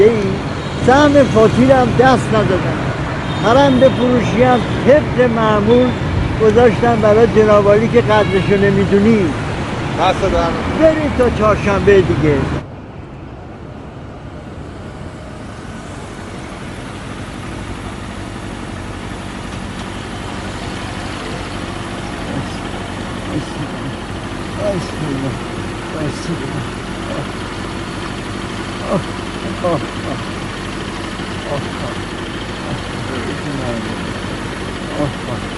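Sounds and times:
speech: 0:00.8 - 0:09.4, 0:10.0 - 0:12.6
motorcycle engine idling: 0:15.9 - 0:35.5
faint voices murmuring: 0:21.1 - 0:27.4, 0:28.8 - 0:35.5.

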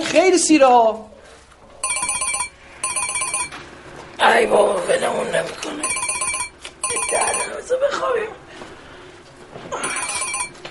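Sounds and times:
speech: 0:00.2 - 0:01.2, 0:04.2 - 0:06.0, 0:07.1 - 0:08.4
telephone ringing with a warbling electronic tone: 0:01.8 - 0:03.7, 0:05.7 - 0:07.7, 0:09.8 - 0:10.6.

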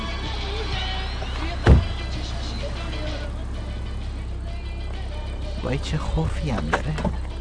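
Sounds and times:
car braking with a heavy low jolt: 0:00.0 - 0:03.3
car with a suspected flat tire rumbling inside the cabin: 0:00.0 - 0:07.3
speech: 0:05.6 - 0:07.3.

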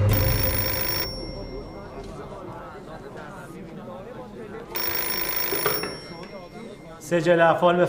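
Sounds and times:
telephone bell ringing: 0:00.1 - 0:02.5, 0:04.7 - 0:07.1
speech: 0:07.1 - 0:07.8.

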